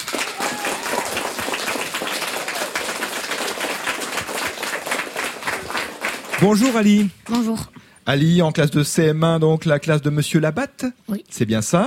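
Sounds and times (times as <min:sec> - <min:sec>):
audience applause for two primary school pupils: 0:00.0 - 0:07.5
speech: 0:06.4 - 0:11.8.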